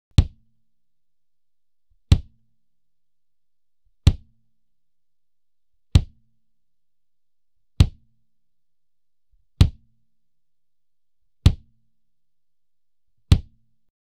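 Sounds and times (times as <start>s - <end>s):
kick drum: 0.1s - 0.6s, 2.0s - 2.5s, 4.0s - 4.4s, 5.9s - 6.3s, 7.8s - 8.2s, 9.5s - 10.0s, 11.4s - 11.8s, 13.2s - 13.8s.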